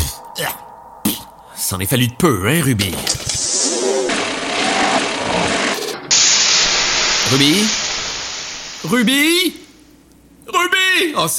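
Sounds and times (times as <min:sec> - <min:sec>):
speech: 0:00.4 - 0:00.6, 0:01.6 - 0:03.5, 0:07.3 - 0:07.8, 0:08.8 - 0:09.6, 0:10.5 - 0:11.3
overheated engine hissing out steam: 0:03.4 - 0:09.8.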